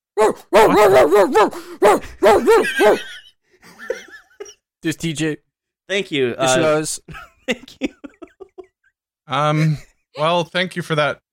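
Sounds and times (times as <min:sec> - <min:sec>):
person imitating a dog barking: 0:00.2 - 0:03.0
speech: 0:00.3 - 0:03.1, 0:04.8 - 0:08.0, 0:09.3 - 0:11.2
laughter: 0:02.4 - 0:04.6, 0:07.1 - 0:08.8.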